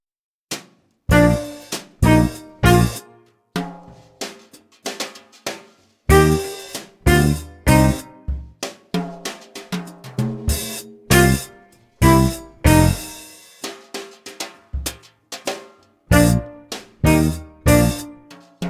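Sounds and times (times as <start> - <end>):
jazz violin play-along: 1.1 - 3.1, 6.1 - 8.5, 11.1 - 13.2, 16.1 - 18.3.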